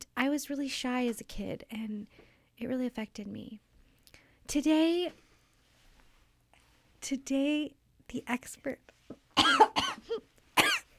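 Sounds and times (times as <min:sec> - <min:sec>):
speech: 0:00.3 - 0:03.7, 0:04.5 - 0:05.2, 0:07.0 - 0:10.3
person coughing: 0:09.4 - 0:10.9.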